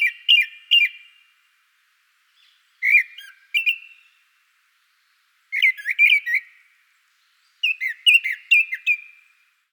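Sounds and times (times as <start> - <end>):
wild Japanese thrush whistled song in Hokkaido, Japan: 0.0 - 1.2, 2.4 - 4.2, 5.5 - 6.6, 7.6 - 9.3.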